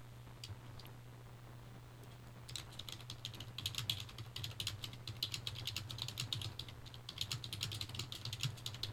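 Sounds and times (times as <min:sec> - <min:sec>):
low constant electrical hum: 0:00.0 - 0:08.9
typing on a computer keyboard: 0:02.0 - 0:08.9.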